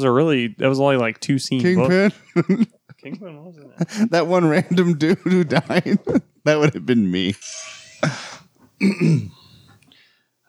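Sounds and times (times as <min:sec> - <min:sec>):
speech: 0:00.0 - 0:09.4
laughter: 0:01.5 - 0:09.6
sharp cough: 0:08.1 - 0:09.8
gravelly throat clearing: 0:08.8 - 0:09.8.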